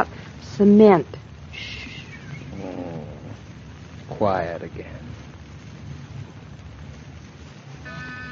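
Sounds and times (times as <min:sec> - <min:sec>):
speech: 0:00.0 - 0:01.8, 0:04.2 - 0:05.1
cat purring loudly: 0:02.4 - 0:03.6.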